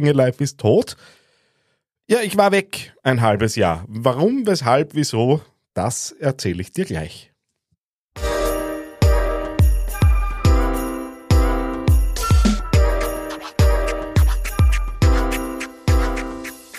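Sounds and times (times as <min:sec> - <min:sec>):
speech: 0:00.0 - 0:01.2, 0:02.1 - 0:07.3
upbeat podcast intro jingle with struck chords: 0:08.2 - 0:16.7.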